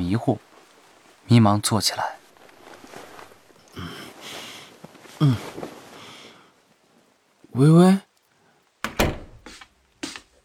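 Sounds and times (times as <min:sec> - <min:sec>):
speech: 0:00.1 - 0:00.5, 0:01.3 - 0:02.2, 0:05.2 - 0:05.7, 0:07.6 - 0:08.1
door pushed shut with a soft thud: 0:08.8 - 0:09.5.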